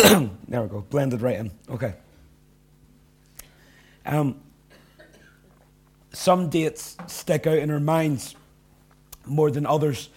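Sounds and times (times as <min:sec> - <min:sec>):
person coughing: 0:00.0 - 0:00.4, 0:04.7 - 0:05.6
speech: 0:00.1 - 0:02.0, 0:04.0 - 0:04.4, 0:06.1 - 0:08.4, 0:09.2 - 0:10.1.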